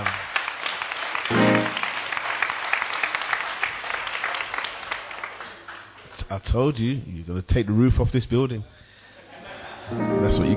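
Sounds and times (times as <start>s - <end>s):
crowd applauding for volunteers who sang: 0.0s - 6.1s
crowd cheer or whoop: 1.2s - 3.2s
speech: 6.3s - 8.8s, 9.9s - 10.5s
laughter: 9.2s - 10.2s.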